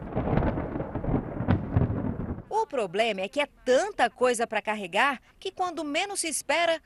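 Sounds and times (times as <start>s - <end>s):
thunder rumbling before rain: 0.0s - 2.6s
speech: 0.2s - 0.5s, 2.5s - 6.8s.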